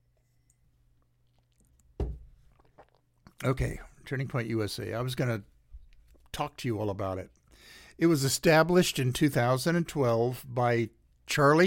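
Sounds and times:
person sipping a drink from a cup: 0:00.2 - 0:03.4
wet gulp: 0:01.0 - 0:03.5
cup thump at the lips: 0:02.0 - 0:02.4
speech: 0:03.4 - 0:05.5, 0:06.4 - 0:11.6.

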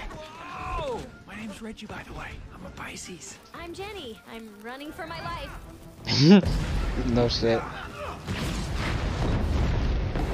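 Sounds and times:
crackling noise: 0:01.4 - 0:10.3
speech: 0:01.6 - 0:08.6
continuous booming explosions: 0:06.4 - 0:10.3.

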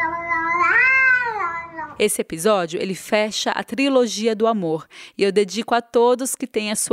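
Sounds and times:
cat meowing: 0:00.1 - 0:02.0
speech: 0:02.0 - 0:06.9.

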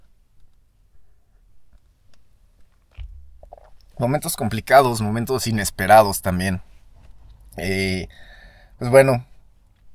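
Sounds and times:
soft thump: 0:02.9 - 0:03.8
person sipping and swallowing coffee: 0:03.0 - 0:04.0
speech: 0:04.0 - 0:06.7, 0:07.6 - 0:09.3.

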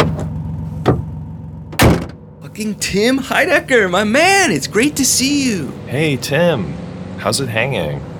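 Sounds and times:
car door of a blue Malibu being unlocked with a button: 0:00.0 - 0:02.2
steady low engine hum: 0:00.0 - 0:08.1
car door latch click as the door is opened: 0:01.8 - 0:02.2
speech: 0:02.6 - 0:08.1.

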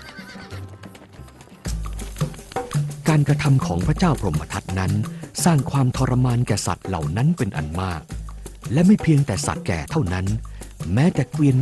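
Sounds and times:
old horse whinnying: 0:00.0 - 0:00.8
old horse's hooves clip-clopping while running: 0:00.0 - 0:04.9
speech: 0:03.1 - 0:08.1, 0:08.7 - 0:11.6.

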